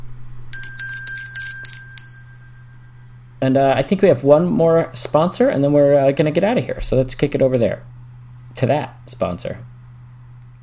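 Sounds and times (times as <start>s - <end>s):
low steady hum: 0.0s - 10.6s
small bell rung rapidly: 0.5s - 3.3s
speech: 3.4s - 8.0s, 8.6s - 9.7s.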